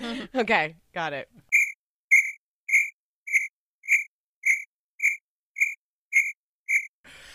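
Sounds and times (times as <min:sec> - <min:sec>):
speech: 0:00.1 - 0:01.5
crickets chirping: 0:01.5 - 0:06.9.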